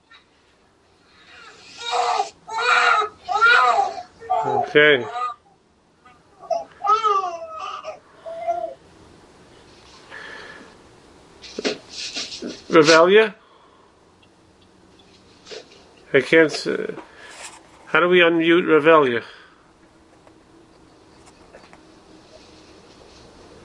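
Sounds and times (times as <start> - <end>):
newborn baby crying and whimpering: 1.2 - 5.5, 6.1 - 8.8
speech: 4.7 - 5.2, 12.8 - 13.4, 16.2 - 17.1, 17.9 - 19.4.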